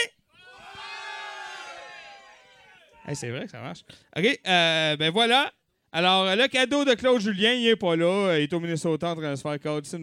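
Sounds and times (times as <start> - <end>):
live audience shouting together: 0.4 - 3.2
speech: 3.1 - 10.0.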